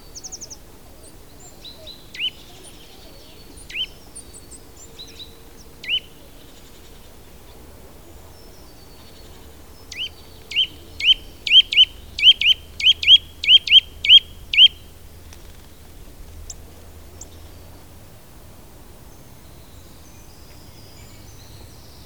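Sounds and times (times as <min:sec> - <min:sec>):
Eurasian nuthatch Sitta europaea calling: 0:01.6 - 0:07.0, 0:08.5 - 0:15.7.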